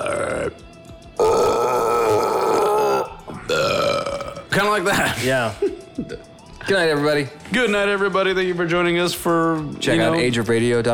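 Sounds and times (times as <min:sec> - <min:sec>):
voice imitating drunken burping into a toilet: 0:00.0 - 0:05.2, 0:06.0 - 0:06.3
speech: 0:04.6 - 0:10.9.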